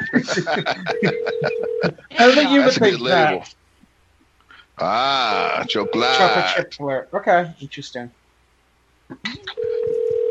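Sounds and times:
laughter: 0.0 - 3.4, 4.8 - 6.8
speech: 0.1 - 3.6, 4.8 - 8.2, 9.1 - 9.8
steady telephone tone: 0.9 - 2.4, 5.3 - 6.5, 9.6 - 10.3
phone line clicks and beeps: 9.6 - 10.3.

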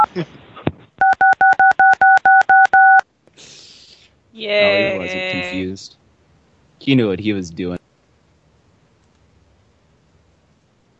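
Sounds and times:
speech: 0.1 - 0.4, 5.5 - 6.0, 6.8 - 7.8
telephone tone of electronic dual-tone beeps played down the line: 1.0 - 3.0.

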